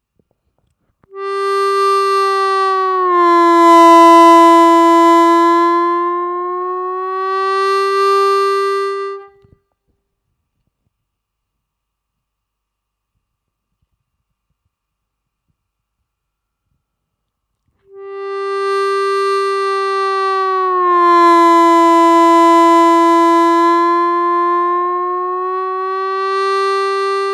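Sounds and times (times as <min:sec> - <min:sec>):
harmonica bend practice track: 0:01.1 - 0:09.4, 0:17.9 - 0:27.3.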